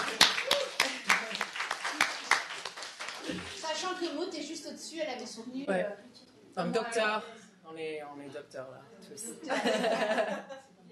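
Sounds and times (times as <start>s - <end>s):
small group clapping: 0.0s - 4.0s
speech: 4.0s - 10.9s
laughter: 9.4s - 10.9s.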